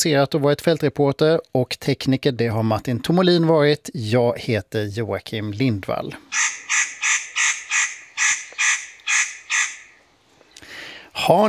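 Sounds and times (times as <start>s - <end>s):
speech: 0.0s - 7.2s, 11.2s - 11.4s
spotted nutcracker harsh rasping calls: 6.2s - 10.6s.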